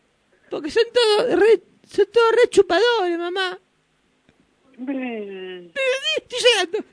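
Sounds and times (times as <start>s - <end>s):
speech: 0.5s - 3.6s, 4.8s - 6.9s
person crying and whimpering: 5.8s - 6.9s.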